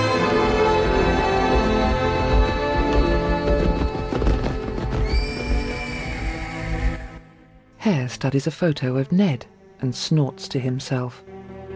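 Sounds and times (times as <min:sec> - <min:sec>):
horses of a riding gang galloping across grassland dotted with trees: 0:00.2 - 0:07.2
horse whinnying: 0:03.2 - 0:07.2
speech: 0:07.9 - 0:11.3.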